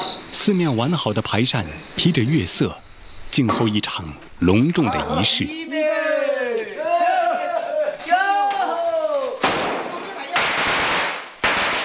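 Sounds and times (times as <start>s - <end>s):
speech: 0.4s - 5.8s
several men shouting drawn-out calls in unison: 4.9s - 9.4s
firecrackers crackling in rapid strings: 8.0s - 11.8s.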